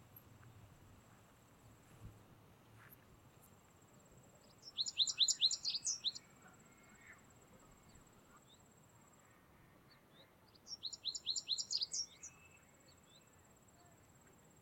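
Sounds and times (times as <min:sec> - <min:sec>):
American Goldfinch Carduelis tristis twittering: 0:04.6 - 0:06.3, 0:10.7 - 0:12.4.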